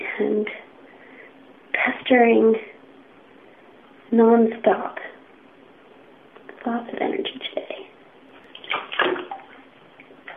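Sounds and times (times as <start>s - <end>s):
speech: 0.2s - 0.7s, 2.1s - 2.7s, 4.1s - 5.1s, 6.6s - 7.8s
steady watery wash: 8.4s - 10.1s
animals swimming and splashing in water: 8.5s - 9.7s.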